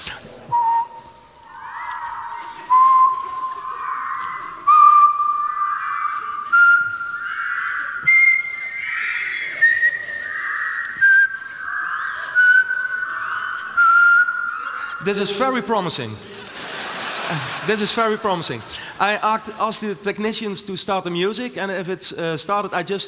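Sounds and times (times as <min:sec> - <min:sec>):
audience whistling together in unison: 0:00.5 - 0:18.2
laughter: 0:01.9 - 0:19.9
speech: 0:15.1 - 0:16.4, 0:17.3 - 0:23.0.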